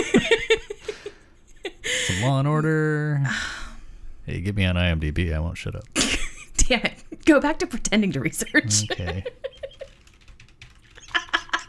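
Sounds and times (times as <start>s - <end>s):
speech: 2.2s - 3.5s, 4.3s - 6.0s, 6.7s - 9.5s
laughter: 8.4s - 9.9s, 11.0s - 11.6s
typing on a keyboard: 9.5s - 11.6s.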